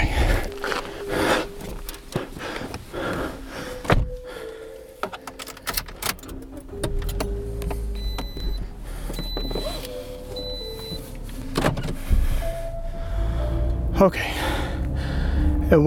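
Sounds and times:
car traffic rumbling: 0:00.0 - 0:15.8
speech: 0:14.0 - 0:14.5.

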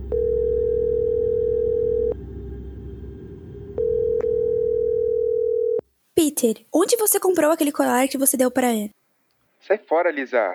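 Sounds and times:
telephone ringback tone while a call is placed: 0:00.0 - 0:02.2, 0:03.8 - 0:05.8
speech: 0:06.2 - 0:09.0, 0:09.6 - 0:10.5.

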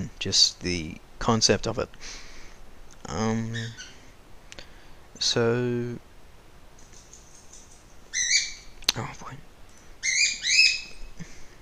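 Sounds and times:
speech: 0:00.2 - 0:02.3, 0:03.1 - 0:03.9, 0:05.2 - 0:06.1, 0:09.0 - 0:09.4
pet bird chirping softly: 0:03.5 - 0:04.0, 0:06.8 - 0:09.0, 0:09.7 - 0:11.2
pet bird squawking: 0:03.5 - 0:04.0, 0:08.1 - 0:08.8, 0:10.0 - 0:11.0.

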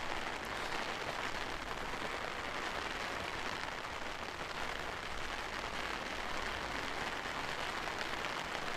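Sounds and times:
steady rain pattering on surfaces: 0:00.0 - 0:08.7.

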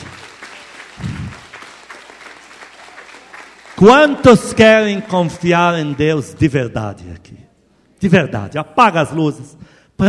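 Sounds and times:
indoor crowd applauding: 0:00.0 - 0:06.6
speech: 0:03.8 - 0:07.4, 0:08.0 - 0:10.0.

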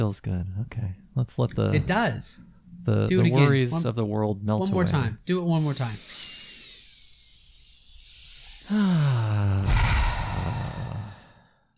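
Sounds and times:
speech: 0:00.0 - 0:06.3, 0:08.7 - 0:09.8
person inhaling through nose: 0:05.6 - 0:11.7
voiced exhaling sigh through mouth: 0:05.6 - 0:11.7.

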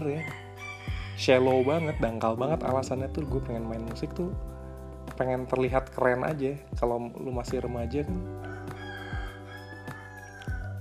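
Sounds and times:
rooster crowing: 0:00.0 - 0:02.3, 0:08.4 - 0:10.7
speech: 0:01.2 - 0:08.5.

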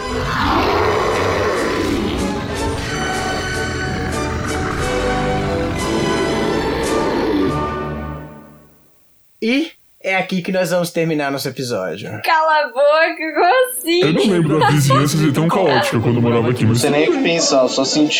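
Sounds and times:
loud rough growling roar: 0:00.0 - 0:08.0
speech: 0:09.4 - 0:18.1
laughter: 0:13.8 - 0:18.1.

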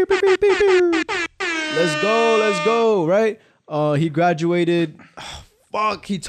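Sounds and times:
loud brassy air horn blasts: 0:00.1 - 0:03.0
speech: 0:01.8 - 0:06.2.

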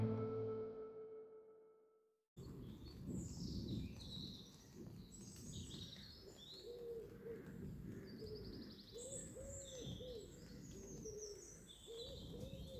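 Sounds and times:
low humming tone: 0:00.0 - 0:01.3
many small birds chirping: 0:02.4 - 0:12.7.

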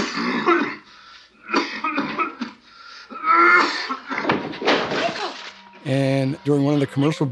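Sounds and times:
actor coughing harshly as if with PCP pneumonia: 0:00.0 - 0:04.4
speech: 0:05.9 - 0:07.2.

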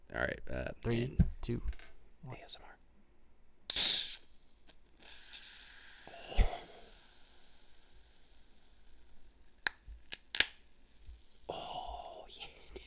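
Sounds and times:
speech: 0:00.1 - 0:02.7
faint whispering: 0:02.2 - 0:02.8, 0:11.5 - 0:12.8
beer can cracking open with fizzing hiss: 0:03.7 - 0:11.5.

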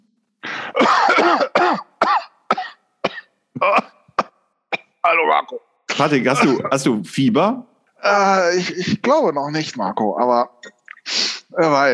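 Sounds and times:
unwell man coughing in a loud fit: 0:00.6 - 0:05.0, 0:05.9 - 0:06.7
speech: 0:05.5 - 0:11.9.

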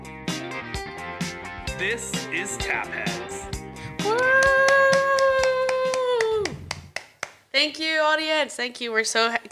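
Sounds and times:
speech: 0:01.8 - 0:03.4, 0:04.0 - 0:04.6, 0:07.6 - 0:09.5
woman whooping cheer: 0:04.0 - 0:06.6
woman clapping in a quick even rhythm: 0:04.0 - 0:07.5.

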